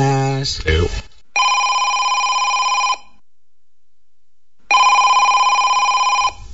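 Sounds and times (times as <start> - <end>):
speech: 0.4 - 1.5
telephone ringing with electronic trill: 1.4 - 3.2, 4.7 - 6.5.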